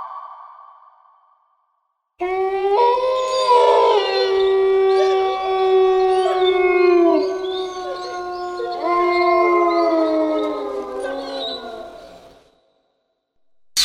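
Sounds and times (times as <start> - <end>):
several wolves howling loudly: 2.2 - 12.5.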